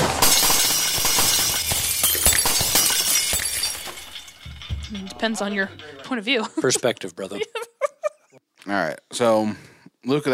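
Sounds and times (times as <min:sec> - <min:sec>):
glass shattering: 0:00.0 - 0:06.3
tinkling crunching glass shards: 0:00.2 - 0:06.2
speech: 0:05.2 - 0:07.7, 0:08.7 - 0:10.3
laughter: 0:06.4 - 0:08.4.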